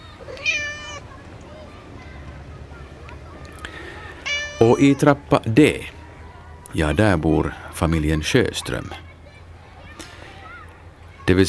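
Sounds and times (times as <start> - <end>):
faint scattered noises: 0.0 - 11.4
cat giving a short clear high-pitched meow: 0.1 - 1.0, 4.0 - 5.2
speech: 4.6 - 6.0, 6.7 - 9.0, 11.3 - 11.4.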